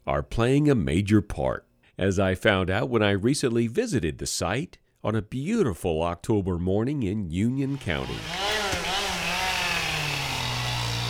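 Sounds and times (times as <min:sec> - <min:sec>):
speech: 0:00.1 - 0:08.4
big chainsaw cutting through base of smooth-barked beech tree in a state forest: 0:07.7 - 0:11.0.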